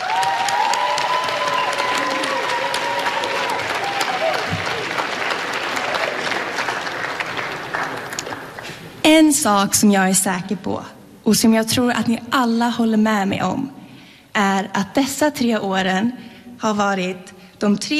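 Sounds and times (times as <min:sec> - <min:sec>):
scattered audience cheers and voices: 0:00.0 - 0:05.0
large audience applause: 0:00.0 - 0:08.7
speech: 0:09.2 - 0:13.8, 0:14.4 - 0:17.9.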